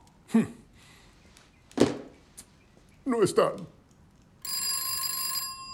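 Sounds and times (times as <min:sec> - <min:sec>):
speech: 0:00.3 - 0:00.6, 0:03.1 - 0:03.8
landline telephone ringing with a bright buzzy bell tone: 0:04.4 - 0:05.7.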